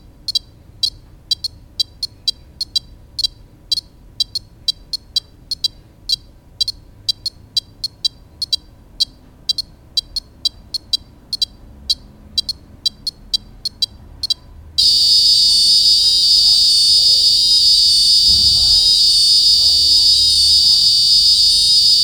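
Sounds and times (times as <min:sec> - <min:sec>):
ESP32 boards beeping: 0:00.3 - 0:22.0
ESP32 boards buzzing: 0:14.8 - 0:22.0.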